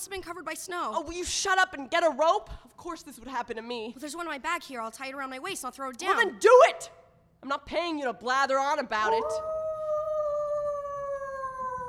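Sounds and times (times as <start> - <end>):
speech: 0.0 - 9.5
wolf howling: 9.0 - 11.8.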